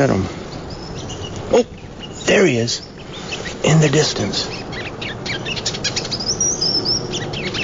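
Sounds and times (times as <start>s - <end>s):
speech: 0.0s - 0.4s, 1.5s - 2.9s, 3.6s - 4.6s
migrating bird calling: 0.0s - 7.6s.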